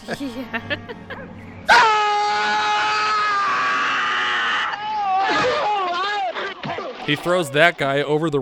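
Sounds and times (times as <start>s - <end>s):
laughter: 0.0s - 1.3s, 5.2s - 7.0s
speech: 0.1s - 1.9s, 7.1s - 8.4s
man screaming loudly: 1.7s - 6.6s.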